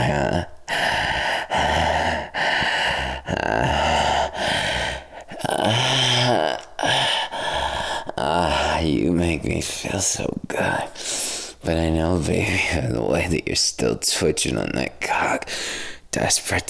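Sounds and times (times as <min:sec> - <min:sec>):
heavy breathless panting and gasping: 0:00.0 - 0:09.0, 0:15.5 - 0:16.1
speech: 0:09.6 - 0:11.0, 0:11.6 - 0:16.6.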